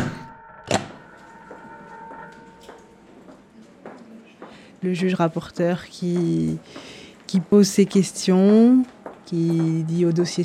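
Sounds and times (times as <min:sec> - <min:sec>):
door slamming shut with a loud sharp bang: 0:00.0 - 0:01.0
steady low hum: 0:00.0 - 0:04.2
speech: 0:04.8 - 0:10.4.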